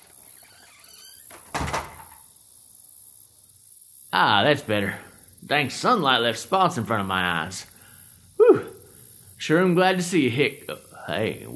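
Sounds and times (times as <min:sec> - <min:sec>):
door creaking and shutting with a thud: 0:00.0 - 0:02.3
speech: 0:04.2 - 0:07.7, 0:09.4 - 0:11.5.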